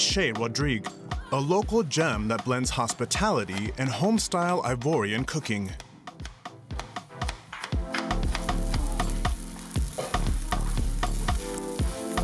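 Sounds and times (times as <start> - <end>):
speech: 0.2 - 5.8
fish frying in oil in a pan: 8.2 - 12.2.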